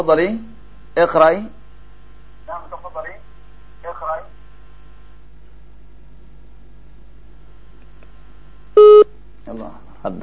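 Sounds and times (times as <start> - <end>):
speech: 0.0 - 1.6, 9.5 - 10.2
telephone busy tone after a dropped call: 8.8 - 9.1.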